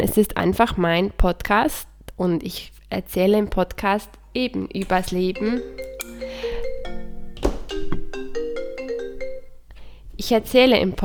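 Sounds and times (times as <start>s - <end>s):
speech: 0.0s - 5.9s, 10.2s - 11.0s
mobile phone ringing with an electronic melody: 4.9s - 9.6s.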